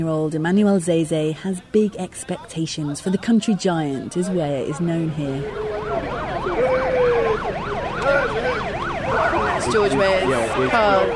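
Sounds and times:
speech: 0.0 - 6.7, 9.2 - 11.1
road and engine noise: 0.0 - 11.1
motorcade vehicle sirens wailing: 2.8 - 11.1.

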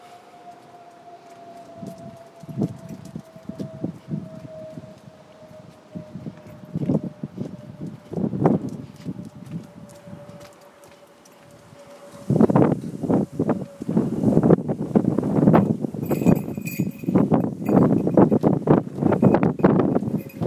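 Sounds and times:
strong wind buffeting a microphone: 1.5 - 10.6, 11.4 - 20.4
small clinking sounds: 16.0 - 18.5, 19.1 - 20.4.

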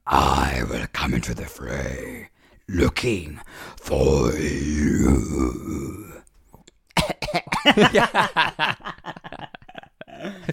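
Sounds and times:
speech: 0.0 - 6.2, 7.6 - 9.2
harsh coughing from jam biscuit stuck in the throat: 6.9 - 8.2
laughter: 7.6 - 10.5.

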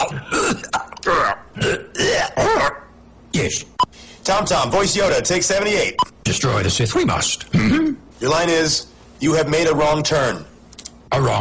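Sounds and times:
man clearing his throat in a voice-recording session: 0.0 - 2.9, 7.5 - 8.0
speech: 3.4 - 10.5, 11.1 - 11.3.

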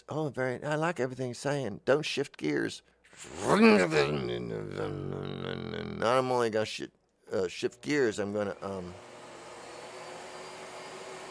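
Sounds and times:
speech: 0.1 - 9.1
vacuum cleaner running: 8.2 - 11.3.

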